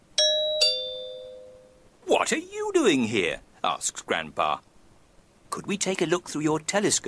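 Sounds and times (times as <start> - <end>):
two-note doorbell chime: 0.2 - 1.8
speech: 2.2 - 4.7, 5.6 - 7.0.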